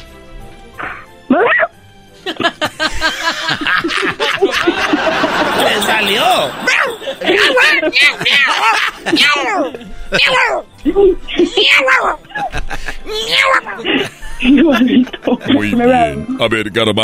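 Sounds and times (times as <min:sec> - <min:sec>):
person imitating a cat and a dog at the same time: 0:00.8 - 0:01.8, 0:06.7 - 0:12.4, 0:13.1 - 0:13.9
laughter: 0:02.2 - 0:10.4, 0:12.2 - 0:15.9
speech: 0:07.5 - 0:17.0.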